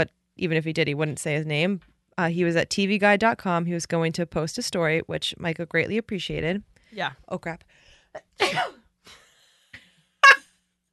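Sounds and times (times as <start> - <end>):
speech: 0.0 - 9.2
loud sneeze: 8.4 - 8.9, 10.2 - 10.5.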